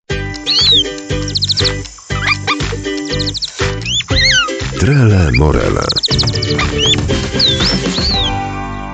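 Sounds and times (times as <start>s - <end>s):
busy steady musical background: 0.1s - 8.9s
sparrow chirping: 0.4s - 8.4s
speech: 0.6s - 1.1s, 4.8s - 6.9s.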